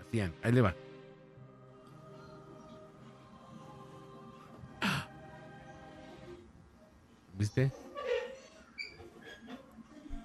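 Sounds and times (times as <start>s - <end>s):
faint hum in a house: 0.0s - 10.2s
speech: 0.1s - 0.8s, 7.4s - 7.8s
tricycle's small metal wheel or axle squeaking: 8.0s - 9.4s.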